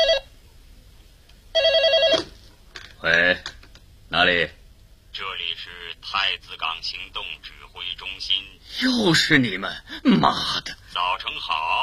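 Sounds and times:
telephone ringing with a trilling pulsed ring: 0.0 - 0.3, 1.5 - 2.3
speech: 4.2 - 4.6, 6.2 - 11.8.

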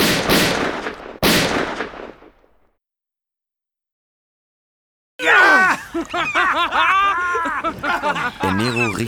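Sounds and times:
gunshots fired from a boat at a large ray under the water: 0.0 - 2.6
laughter: 5.3 - 9.0
speech: 6.0 - 9.0.

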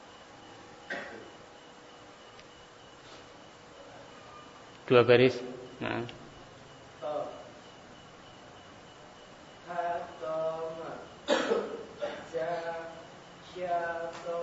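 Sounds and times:
person coughing during a class: 0.9 - 1.3, 11.2 - 12.3
class voices repeating Arabic letter sounds: 3.8 - 14.4
speech: 4.9 - 6.2.

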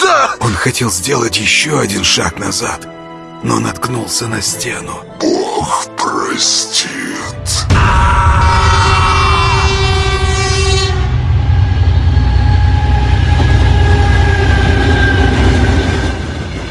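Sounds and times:
speech: 0.6 - 9.0
sustained train horn blaring: 8.3 - 16.3
train rumbling on rails entering a tunnel: 8.6 - 16.6.

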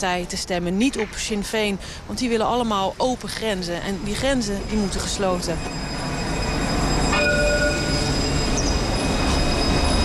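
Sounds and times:
speech: 0.0 - 6.0
tram rail rumble and rattle: 0.0 - 10.0
high tram wheel squeals: 3.8 - 10.0.

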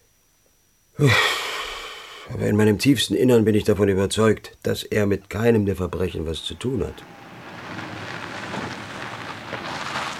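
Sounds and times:
speech: 1.0 - 1.4, 2.3 - 7.2
rain falling as a radio-drama sound effect: 6.0 - 10.1.

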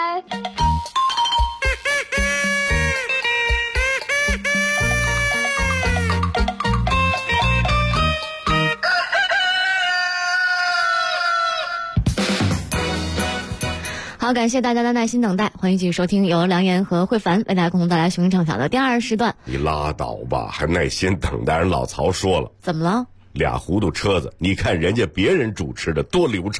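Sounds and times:
lively loud morning jingle music: 0.1 - 8.8, 12.2 - 14.1
rooster crowing and clucking: 8.5 - 12.1
speech: 14.3 - 26.5.

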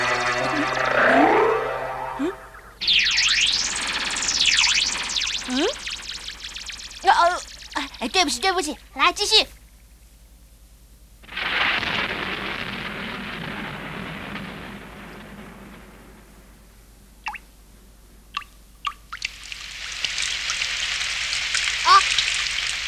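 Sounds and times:
rain falling: 0.0 - 2.6, 3.4 - 9.3, 11.2 - 22.8
hissing downpour: 3.2 - 9.4, 11.2 - 17.3, 19.2 - 22.8
speech: 8.5 - 9.6.

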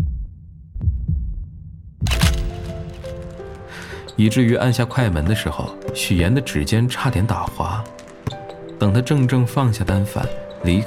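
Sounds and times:
heartbeat thumps: 0.0 - 2.5
speech: 4.2 - 7.9, 8.8 - 10.8.

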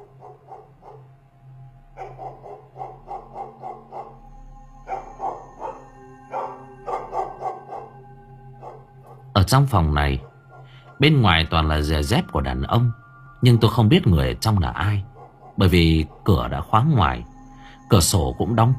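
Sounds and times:
dog barking loudly and agitatedly with hackles raised: 0.0 - 1.1, 2.0 - 4.2, 4.9 - 8.0, 8.6 - 8.9, 15.1 - 16.2
speech: 9.5 - 10.3, 11.0 - 17.3, 17.9 - 18.7.

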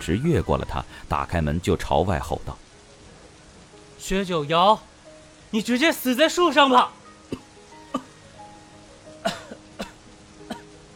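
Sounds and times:
speech: 0.0 - 2.6, 4.0 - 4.9, 5.5 - 7.5
man coughing hoarsely with a hand on his chest: 7.3 - 8.1, 9.2 - 10.7.

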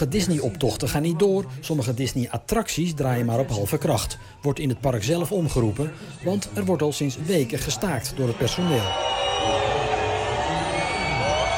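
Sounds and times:
speech: 0.0 - 9.2
theme park crowd of families booing: 8.2 - 11.5.

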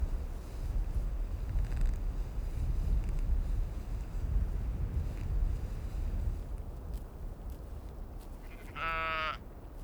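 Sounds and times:
strong gusting wind at Kallur Lighthouse, Faroe Islands: 0.0 - 8.5
sheep bleating on slopes at Kallur Lighthouse, Kalsoy, Faroe Islands: 8.4 - 9.4.

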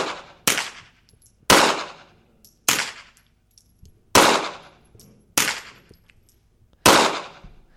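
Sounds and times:
pistol shots alternating unsuppressed and with a silencer: 0.0 - 3.2, 4.1 - 4.8, 5.4 - 5.9, 6.8 - 7.4.

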